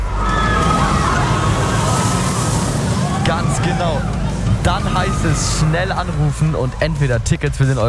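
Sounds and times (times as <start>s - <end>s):
high whine of roller coaster wheels on the track: 0.0s - 7.8s
roller coaster roaring past: 0.0s - 7.8s
speech: 3.8s - 7.8s.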